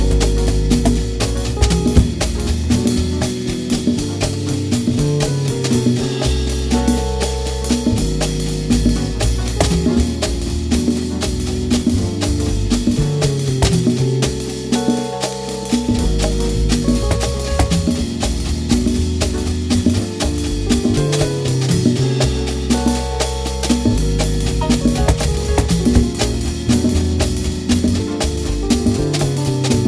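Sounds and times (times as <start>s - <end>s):
bass run: 0.0s - 29.8s.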